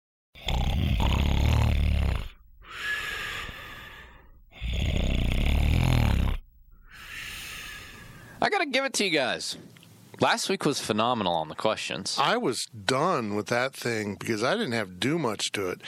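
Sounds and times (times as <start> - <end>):
person faking loud rattling snoring: 0.4 - 2.4, 4.5 - 6.4
speech: 8.4 - 15.8.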